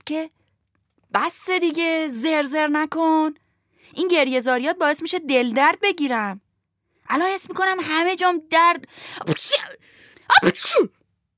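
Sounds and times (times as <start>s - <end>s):
speech: 0.1s - 0.4s, 1.1s - 6.4s, 7.1s - 11.0s
person acting out a gruff character's sneeze: 10.2s - 11.0s.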